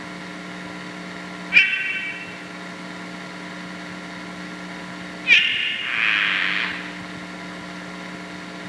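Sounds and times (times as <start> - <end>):
Dendropsophus padreluna frog calling: 1.5 - 2.9, 5.2 - 7.2
steady low hum: 1.5 - 3.3, 4.7 - 7.7.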